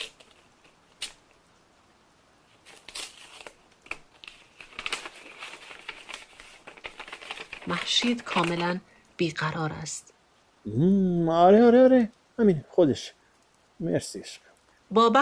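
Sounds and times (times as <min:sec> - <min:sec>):
paper letter crinkling and rustling as it is opened: 0:00.0 - 0:01.4, 0:02.5 - 0:08.8
speech: 0:07.7 - 0:13.2, 0:13.8 - 0:15.1.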